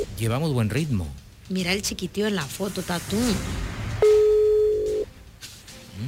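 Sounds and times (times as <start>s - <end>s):
speech: 0.0s - 3.7s
telephone ringback tone while a call is being placed: 4.0s - 5.1s.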